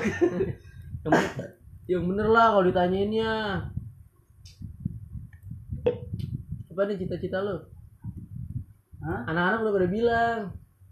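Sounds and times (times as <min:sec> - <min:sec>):
speech: 0:00.1 - 0:03.8, 0:06.8 - 0:07.7, 0:09.0 - 0:10.6
person coughing harshly: 0:01.1 - 0:01.5.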